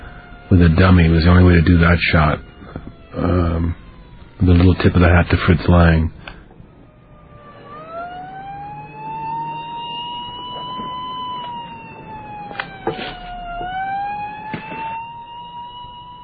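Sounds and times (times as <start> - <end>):
low traffic rumble: 0.0 - 16.2
police car siren passing: 0.0 - 16.2
speech: 0.5 - 2.5, 3.2 - 3.8, 4.4 - 6.2.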